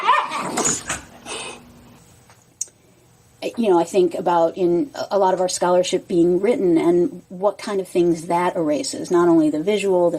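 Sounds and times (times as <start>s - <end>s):
dogs scuffling and play-fighting: 0.0s - 1.2s
speech: 3.4s - 10.1s.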